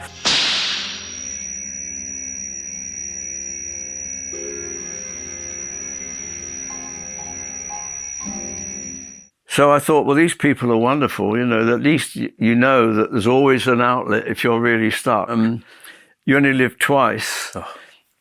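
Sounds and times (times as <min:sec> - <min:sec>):
whip crack: 0:00.0 - 0:01.3
sustained steely metallic ringing tone: 0:00.0 - 0:09.3
speech: 0:09.6 - 0:17.8.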